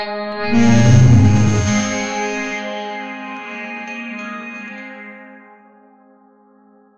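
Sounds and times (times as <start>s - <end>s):
brooding synth pads: 0.5s - 2.7s.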